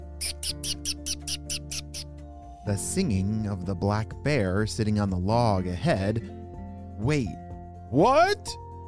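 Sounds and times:
shrill chittering calls: 0:00.2 - 0:02.1
speech: 0:02.7 - 0:06.4, 0:07.0 - 0:08.6.

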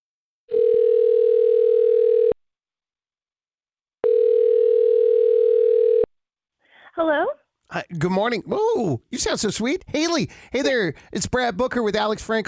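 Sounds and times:
telephone line tone while placing a call: 0:00.5 - 0:02.4, 0:04.0 - 0:06.1
speech: 0:07.0 - 0:12.4.

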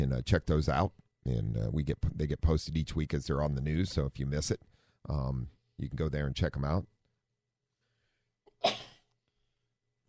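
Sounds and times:
speech: 0:00.0 - 0:07.0
sharp sneeze: 0:08.6 - 0:09.1.

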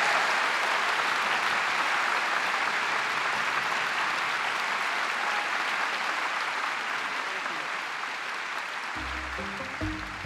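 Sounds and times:
audience applause after an evening talk: 0:00.0 - 0:10.2
faint low musical tone: 0:09.0 - 0:10.2.

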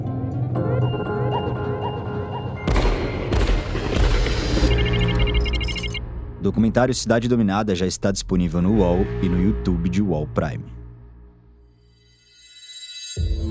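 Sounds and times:
droning musical background: 0:00.0 - 0:07.5, 0:08.2 - 0:12.4
sharp gunshots: 0:02.7 - 0:04.9
speech: 0:06.4 - 0:10.8.

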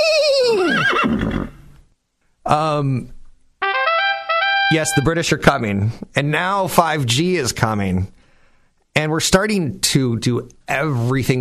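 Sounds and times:
horse whinnying: 0:00.0 - 0:01.8
speech: 0:02.5 - 0:03.2, 0:04.7 - 0:08.2, 0:09.0 - 0:11.3.

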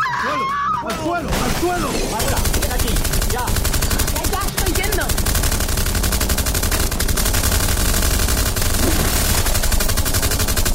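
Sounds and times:
speech: 0:00.9 - 0:02.5, 0:03.3 - 0:03.8
sustained rapid machine-gun fire during a siege: 0:01.3 - 0:10.7.

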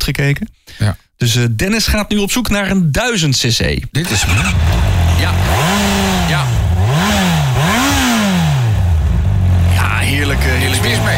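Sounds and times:
speech: 0:00.1 - 0:07.2
600cc motorcycle engine with stock exhaust revving: 0:04.0 - 0:11.1.

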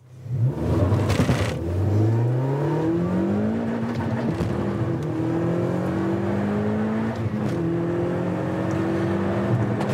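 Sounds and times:
steady road rumble: 0:00.0 - 0:09.9
small hot hatch engine revving hard while accelerating through the gears: 0:00.2 - 0:09.9.

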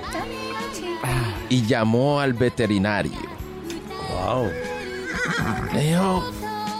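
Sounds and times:
speech: 0:00.1 - 0:03.4, 0:04.1 - 0:06.4
horse whinnying loudly: 0:04.2 - 0:06.0.

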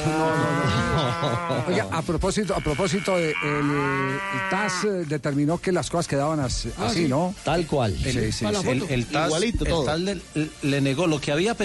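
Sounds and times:
cow mooing: 0:00.0 - 0:01.8, 0:02.5 - 0:04.9
laughter: 0:00.2 - 0:01.9
speech: 0:01.2 - 0:11.6.

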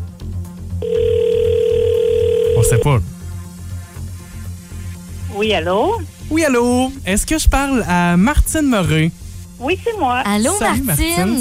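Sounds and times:
low rhythmic sound: 0:00.1 - 0:11.3
telephone ringing on an outgoing call: 0:00.8 - 0:03.0
speech: 0:02.6 - 0:03.2, 0:05.4 - 0:11.3.

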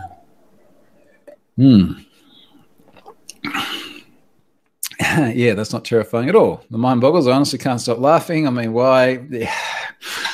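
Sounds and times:
person gulping beer: 0:01.0 - 0:04.2
speech: 0:01.6 - 0:02.1, 0:05.2 - 0:09.6.

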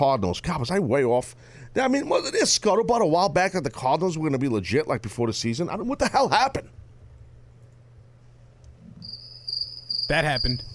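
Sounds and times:
speech: 0:00.0 - 0:06.8, 0:10.1 - 0:10.7
high-pitched crickets chirping: 0:08.8 - 0:10.7.

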